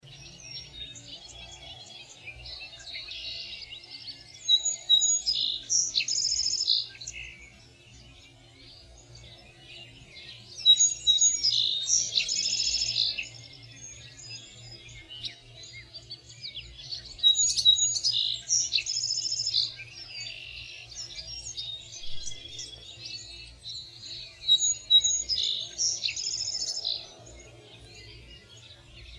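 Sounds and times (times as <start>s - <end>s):
birds in Verona: 0.0s - 29.1s.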